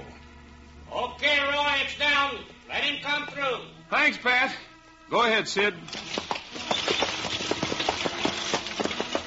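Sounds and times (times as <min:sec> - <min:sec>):
speech: 0:01.2 - 0:06.1
horse hoofbeats clip-clopping: 0:05.9 - 0:09.2
horse-drawn wagon clattering along: 0:05.9 - 0:09.2.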